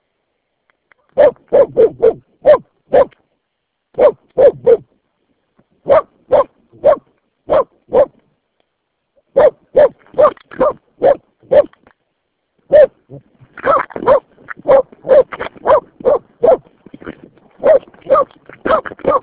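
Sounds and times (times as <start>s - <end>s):
dog barking: 1.2s - 3.2s, 4.0s - 4.9s, 5.8s - 8.2s, 9.3s - 11.8s, 12.7s - 16.7s, 17.6s - 19.2s.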